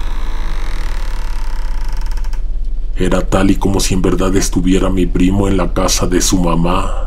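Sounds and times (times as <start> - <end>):
house door creaking open: 0.0 - 2.8
low rumble: 0.0 - 7.0
speech: 3.0 - 7.0.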